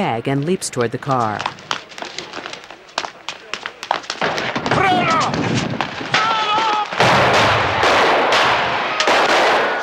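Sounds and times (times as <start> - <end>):
speech: 0.0 - 1.8
gunshots fired into a man in an alley: 4.0 - 9.8.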